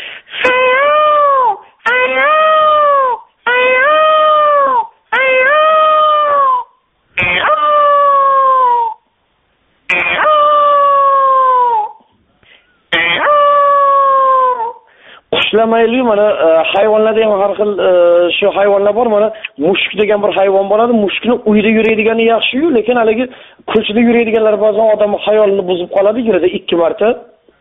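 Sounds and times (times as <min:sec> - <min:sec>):
peacock calling: 0:00.4 - 0:09.0, 0:09.9 - 0:14.9
speech: 0:15.6 - 0:27.3.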